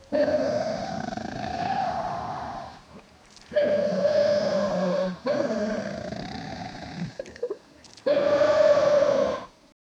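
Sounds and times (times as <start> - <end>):
wolf howling with long steady moaning tones: 0.1 - 2.8, 3.6 - 6.9, 8.1 - 9.5.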